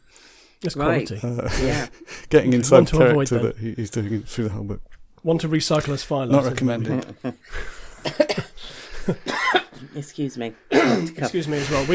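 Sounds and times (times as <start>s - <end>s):
speech: 0.6s - 11.9s
raspy dry coughs: 8.0s - 9.8s, 10.7s - 11.4s.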